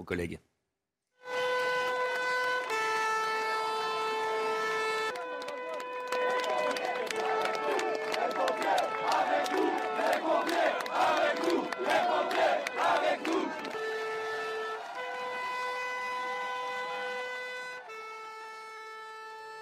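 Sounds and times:
speech: 0:00.0 - 0:00.5
long sustained horn-like blasts: 0:01.2 - 0:19.6
outdoor crowd at a march against pension reform cheering and shouting for firefighters: 0:05.2 - 0:17.5.

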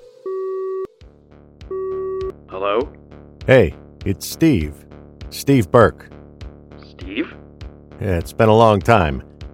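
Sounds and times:
telephone ringing tone on an outgoing call: 0:00.2 - 0:00.9, 0:01.7 - 0:02.3
speech: 0:02.6 - 0:06.1, 0:08.0 - 0:09.3.

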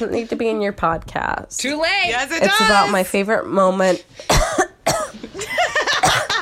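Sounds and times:
speech: 0:00.0 - 0:04.7
harsh throaty coughing: 0:04.3 - 0:05.3, 0:05.9 - 0:06.4
laughter: 0:05.2 - 0:06.4.

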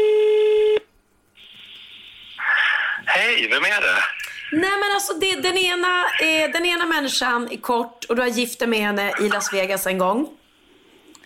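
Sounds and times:
loud steady telephone tone: 0:00.0 - 0:00.8
speech: 0:03.4 - 0:10.4.

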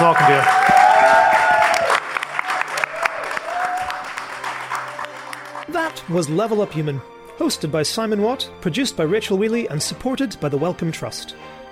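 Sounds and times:
live theatre audience applause: 0:00.0 - 0:06.4
live audience cheering: 0:00.0 - 0:06.5
speech: 0:06.1 - 0:11.6.

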